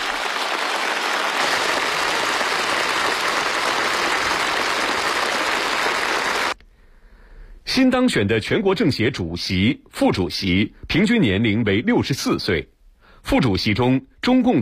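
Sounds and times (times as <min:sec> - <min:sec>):
prolonged applause in a meeting hall at a national political conference: 0:00.0 - 0:06.6
speech: 0:07.8 - 0:14.6.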